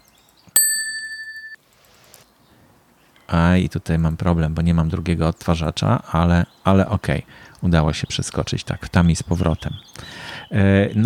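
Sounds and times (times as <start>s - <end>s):
small bell ding sound effect: 0.6s - 1.6s
speech: 3.3s - 11.0s.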